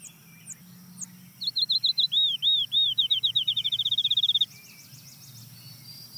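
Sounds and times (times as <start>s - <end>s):
field sparrow singing down-slurred whistles into a trill: 0.0s - 6.1s.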